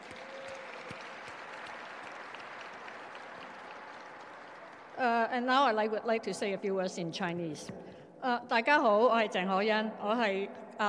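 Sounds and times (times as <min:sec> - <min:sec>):
sizable crowd applauding: 0:00.0 - 0:05.2
speech: 0:05.0 - 0:10.8.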